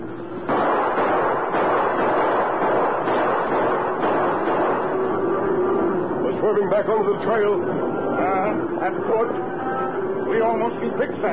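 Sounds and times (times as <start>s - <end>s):
gunshots during a cattle stampede: 0.4s - 8.8s
speech: 6.5s - 9.7s, 10.3s - 11.3s.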